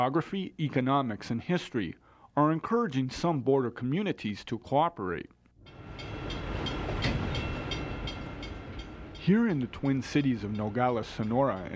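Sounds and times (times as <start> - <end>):
speech: 0.0 - 5.4, 9.2 - 11.7
freight train rumbling past in Nogales on the Mexico-US border: 5.6 - 11.7.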